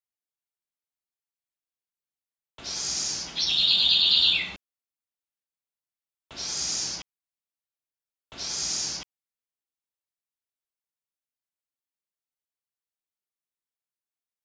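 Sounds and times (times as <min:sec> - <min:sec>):
Troglodytes wren: 0:02.6 - 0:04.6, 0:06.3 - 0:07.0, 0:08.4 - 0:09.0.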